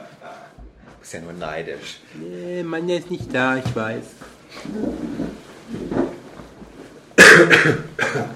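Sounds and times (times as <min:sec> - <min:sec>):
speech: 0:01.0 - 0:06.0, 0:07.6 - 0:08.3
sharp harsh coughing: 0:07.2 - 0:08.3
soft throat clearing rumbles: 0:07.2 - 0:08.3.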